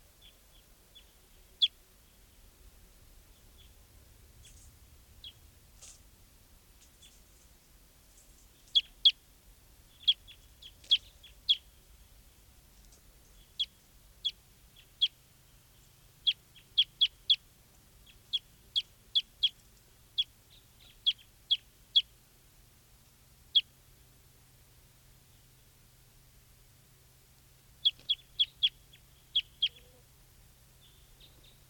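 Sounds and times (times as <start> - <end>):
faint low rumble: 0.0 - 31.6
bird calling with short sharp high chirps: 0.2 - 2.5, 3.3 - 6.0, 8.4 - 9.2, 9.8 - 12.4, 13.2 - 22.1, 27.8 - 30.1, 30.7 - 31.6.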